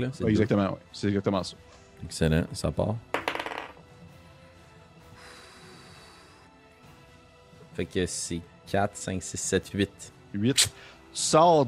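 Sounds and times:
speech: 0.0s - 3.2s, 7.8s - 11.6s
twenty-sided die clattering across a hard tabletop: 3.1s - 3.8s.

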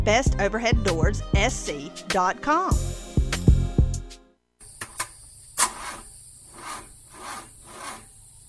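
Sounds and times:
speech: 0.0s - 3.0s
car starter grinding, engine failing to start: 5.6s - 8.1s.

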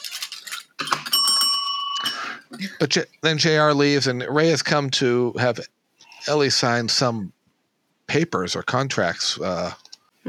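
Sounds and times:
rattling and clinking: 0.0s - 2.6s
bright little bell ringing: 0.9s - 2.7s
speech: 2.6s - 7.4s, 8.1s - 10.2s.

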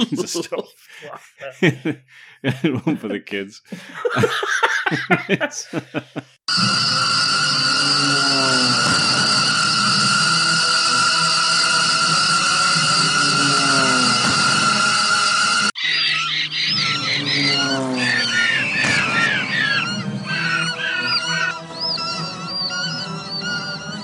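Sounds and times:
short bursts of laughter: 0.0s - 6.4s
speech: 0.0s - 7.1s
loud sustained droning roar with steady whining tones: 6.5s - 24.0s
chorus of fake CGI cartoon birds squawking and honking: 10.8s - 24.0s.

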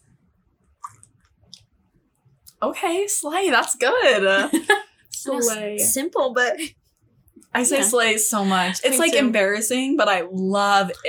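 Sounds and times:
people sipping a chilled sunrise-coloured drink: 0.8s - 1.7s, 10.8s - 11.0s
speech: 2.6s - 6.8s, 7.6s - 11.0s.

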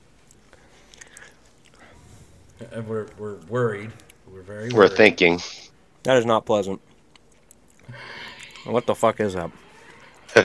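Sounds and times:
soft wet mouth clicks and smacks: 0.2s - 1.8s, 6.9s - 8.6s
chewing a jelly bean: 0.2s - 4.8s, 6.8s - 8.7s
speech: 2.6s - 6.9s, 8.6s - 9.6s.

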